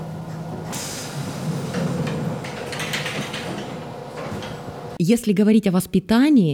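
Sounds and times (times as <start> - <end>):
train pulling away with low rumble and mechanical clatter: 0.0 - 5.0
train doors hissing and sliding shut with a burst of air: 0.6 - 4.9
speech: 5.0 - 6.5.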